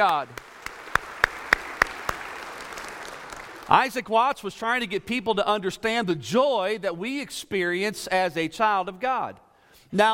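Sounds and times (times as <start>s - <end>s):
speech: 0.0s - 0.5s, 3.7s - 10.1s
hand claps of praise at a church service: 0.0s - 3.8s.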